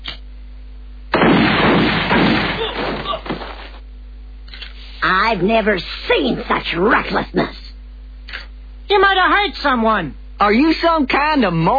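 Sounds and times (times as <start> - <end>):
gunshot fired at a television to switch it on: 1.1 - 3.0
speech: 5.3 - 7.6, 8.9 - 11.7.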